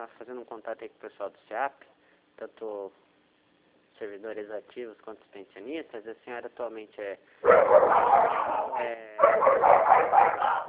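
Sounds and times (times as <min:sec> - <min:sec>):
speech: 0:00.0 - 0:03.1, 0:04.0 - 0:10.6
dogs barking: 0:07.4 - 0:10.6.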